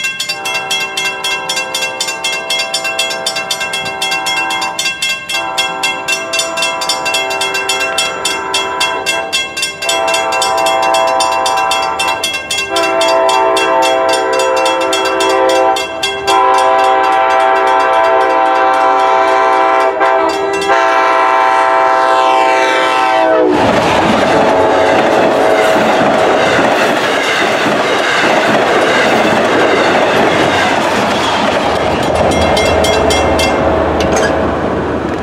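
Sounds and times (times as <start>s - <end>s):
dead crossing bell: 0.0s - 22.2s, 24.9s - 34.7s
train flying through in New Hyde Park: 0.0s - 35.2s
train horn: 0.3s - 23.7s, 24.3s - 26.6s, 32.3s - 34.4s.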